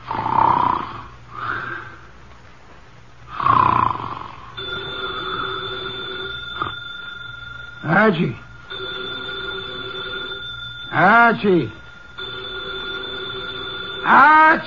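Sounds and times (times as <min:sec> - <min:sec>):
man snoring loudly through his nose in an office chair: 0:00.0 - 0:01.9, 0:03.3 - 0:06.8
desk telephone ringing with a buzzing electric tone in an office: 0:04.6 - 0:14.6
speech: 0:08.1 - 0:08.4, 0:11.0 - 0:11.8, 0:14.1 - 0:14.6.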